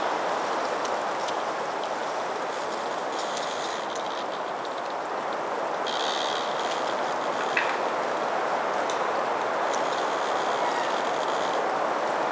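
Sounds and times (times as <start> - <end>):
spring woods ambience: 0.0 - 12.2.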